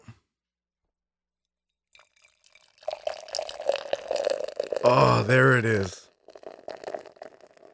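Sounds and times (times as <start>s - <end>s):
beer pouring into a glass mug: 1.9s - 7.7s
speech: 4.9s - 6.1s.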